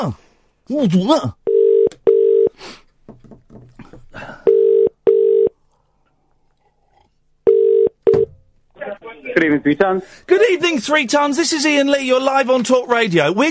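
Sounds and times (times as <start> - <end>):
speech: 0.0 - 1.4, 9.4 - 13.4
telephone ringing tone in paired bursts over a phone line: 1.5 - 2.5, 4.5 - 5.6, 7.4 - 8.3.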